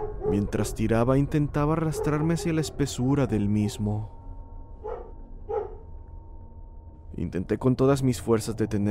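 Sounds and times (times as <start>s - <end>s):
dog on a leash barking beside a road by a forest: 0.0s - 0.5s, 1.8s - 2.5s, 4.8s - 5.8s
steady low rumble of noise: 0.0s - 8.8s
speech: 0.3s - 4.2s, 7.2s - 8.8s.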